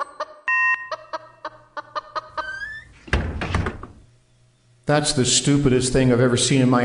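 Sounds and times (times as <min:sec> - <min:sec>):
chicken clucking: 0:00.0 - 0:03.0
speech: 0:04.9 - 0:06.8.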